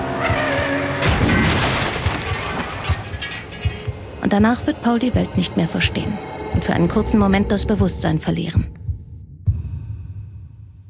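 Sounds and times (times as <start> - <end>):
old BMW slamming from the side into another car: 0.3 - 3.7
crunching rattling car crash debris: 1.0 - 3.9
speech: 4.3 - 8.8.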